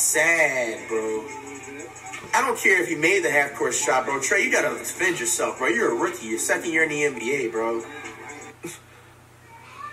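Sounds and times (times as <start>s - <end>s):
speech: 0.1s - 8.8s
cat meowing: 9.5s - 9.9s.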